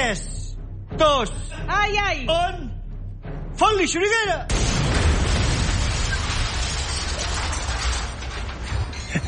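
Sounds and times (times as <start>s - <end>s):
speech: 0.0s - 0.3s, 0.9s - 2.8s, 3.6s - 5.0s
explosive charge detonating under a car: 4.5s - 9.0s.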